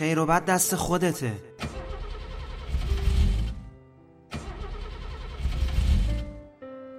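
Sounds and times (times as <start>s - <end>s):
speech: 0.0s - 1.6s
car engine cranking but failing to start: 1.6s - 6.4s.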